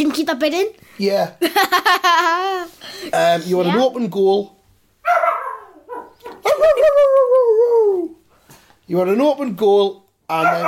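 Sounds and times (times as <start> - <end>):
speech: 0.0 - 4.6, 8.9 - 10.6
laughter: 1.4 - 2.7, 6.4 - 7.7
dog barking and yelping: 5.0 - 7.0, 10.3 - 10.6.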